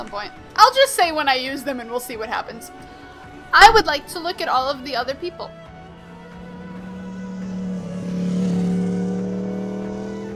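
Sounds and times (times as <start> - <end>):
speech: 0.0 - 5.6
motorcycle engine droning past: 5.1 - 10.3.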